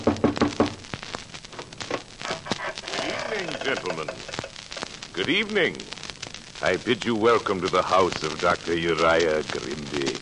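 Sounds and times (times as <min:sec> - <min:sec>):
knocking on a door: 0:00.0 - 0:00.8
speech: 0:03.6 - 0:04.4, 0:05.2 - 0:06.0, 0:06.6 - 0:10.2.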